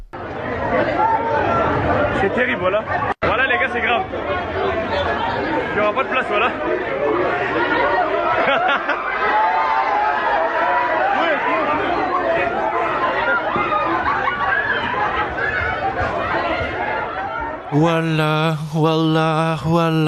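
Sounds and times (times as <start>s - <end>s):
crowd chattering while boarding a train: 0.0s - 20.0s
speech: 2.2s - 9.5s, 17.7s - 20.0s
people laughing: 8.0s - 9.4s, 13.3s - 15.5s.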